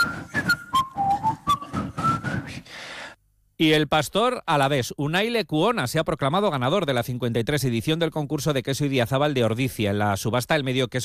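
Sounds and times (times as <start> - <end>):
crowd in Donostia whistling a slow soundtrack melody: 0.0 - 2.6
speech: 3.6 - 11.0.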